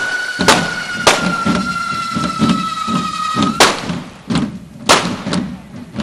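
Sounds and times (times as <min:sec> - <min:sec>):
constant fizzing hiss of fireworks: 0:00.0 - 0:03.8
firecracker bangs in final fire burst of a devils' dance festival: 0:00.0 - 0:06.0.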